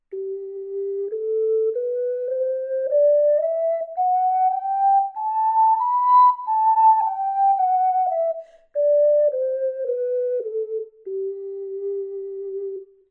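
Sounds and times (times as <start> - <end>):
ocarina playing a G major scale: 0.1 - 12.8.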